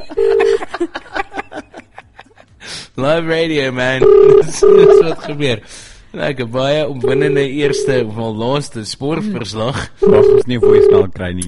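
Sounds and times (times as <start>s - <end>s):
laughter: 0.0s - 2.7s, 4.5s - 5.8s
speech: 0.1s - 1.0s, 3.0s - 11.4s
telephone keypad dialing tones: 0.2s - 0.6s, 4.0s - 5.0s, 10.0s - 11.0s.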